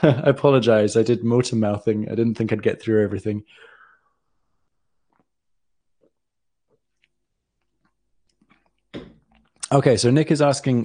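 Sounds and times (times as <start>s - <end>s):
speech: 0.0s - 3.7s, 9.7s - 10.8s
person sipping water: 4.7s - 9.6s.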